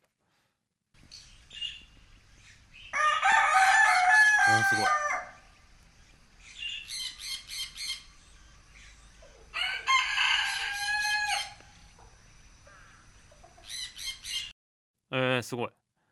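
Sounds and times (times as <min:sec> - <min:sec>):
rooster crowing at a small zoo in Ōike Park, Tokai City, Japan: 0:02.9 - 0:05.5, 0:09.5 - 0:11.7
speech: 0:04.5 - 0:05.0, 0:15.5 - 0:15.8.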